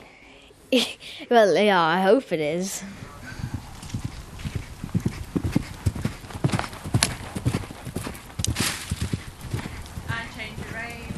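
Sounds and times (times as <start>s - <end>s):
speech: 0.7s - 3.1s
ridden pony's hooves cantering: 3.0s - 11.1s.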